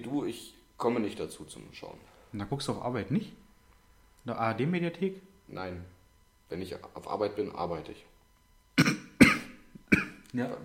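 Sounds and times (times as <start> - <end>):
speech: 0.1 - 3.4, 4.2 - 8.1, 9.9 - 10.6
harsh throat clearing: 8.8 - 10.2.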